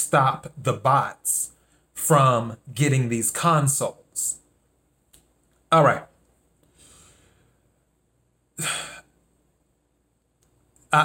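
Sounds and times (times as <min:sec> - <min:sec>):
speech: 0:00.1 - 0:01.5, 0:02.1 - 0:04.4, 0:05.7 - 0:06.1
deep breath: 0:06.6 - 0:07.7
burst of breath: 0:06.7 - 0:07.6.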